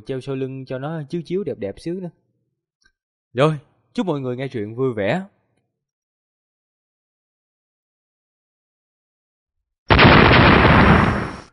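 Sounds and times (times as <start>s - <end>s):
speech: 0.0s - 2.2s, 3.3s - 5.4s
loud explosive blast of a giant fist smashing into a barrier of light: 9.9s - 11.5s.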